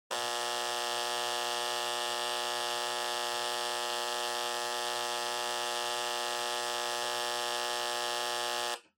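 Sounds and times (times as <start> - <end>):
flip clock buzzer at 60Hz: 0.1 - 8.9.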